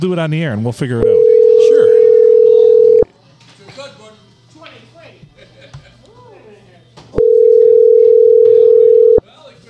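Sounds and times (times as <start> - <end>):
speech: 0.0 - 1.2
telephone ringing tone over the line calling an old cell phone number: 1.0 - 3.1, 7.2 - 9.2.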